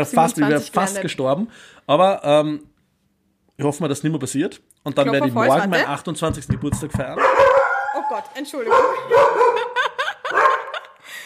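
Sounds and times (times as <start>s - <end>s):
speech: 0.0s - 2.7s, 3.6s - 7.5s, 8.1s - 9.7s
dog barking: 7.2s - 10.9s
laughter: 9.1s - 11.2s.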